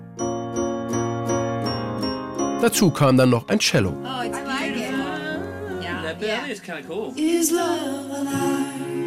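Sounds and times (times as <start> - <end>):
bright glockenspiel chimes: 0.2 - 3.8
speech: 2.6 - 4.6, 6.2 - 8.9.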